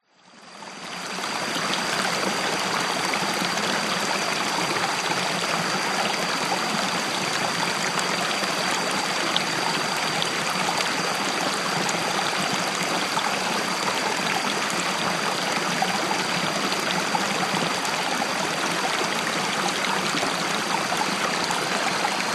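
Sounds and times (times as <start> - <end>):
jungle insects in Thailand: 0.1 - 22.3
jungle river water flowing in Thailand: 0.5 - 22.3.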